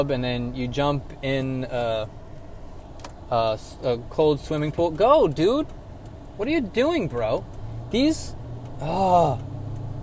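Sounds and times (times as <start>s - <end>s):
speech: 0.0s - 2.2s, 3.3s - 5.8s, 6.4s - 9.5s
road noise inside a car merging onto a freeway: 0.0s - 10.0s
driver exclaiming at another driver: 6.4s - 9.7s.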